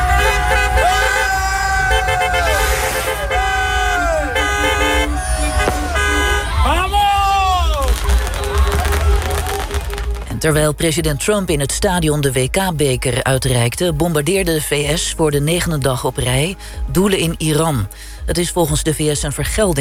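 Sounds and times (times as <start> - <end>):
car horns honking by celebrating fans in a street: 0.0 - 9.6
crowd noise: 0.0 - 12.3
traffic rumble: 0.0 - 19.7
speech: 10.4 - 19.7.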